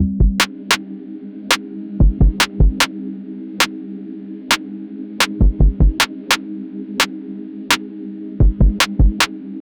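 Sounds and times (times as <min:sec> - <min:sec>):
trap music beat: 0:00.0 - 0:00.5, 0:02.0 - 0:02.9, 0:05.2 - 0:06.4, 0:08.4 - 0:09.3.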